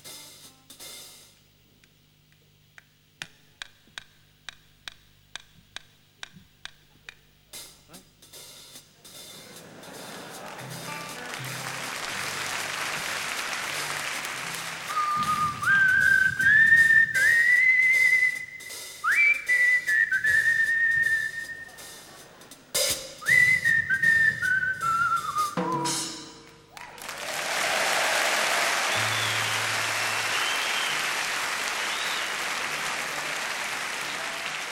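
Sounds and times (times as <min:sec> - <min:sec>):
laughter: 0:09.3 - 0:15.0, 0:21.6 - 0:22.8, 0:27.2 - 0:34.7
man whistling a wandering tune: 0:14.8 - 0:21.8, 0:23.2 - 0:26.1, 0:28.9 - 0:31.2, 0:31.8 - 0:32.4.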